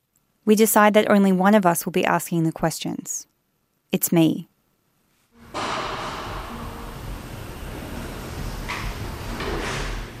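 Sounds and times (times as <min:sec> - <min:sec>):
speech: 0:00.4 - 0:03.3, 0:03.9 - 0:04.5
heavy sliding metal jail door rolling: 0:05.4 - 0:10.1
metal jail door clanks: 0:05.4 - 0:10.1.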